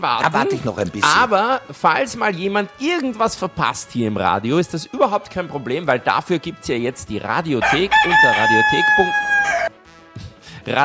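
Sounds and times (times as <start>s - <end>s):
speech: 0.0s - 9.6s, 10.6s - 10.8s
farmyard rooster crowing: 7.6s - 9.8s.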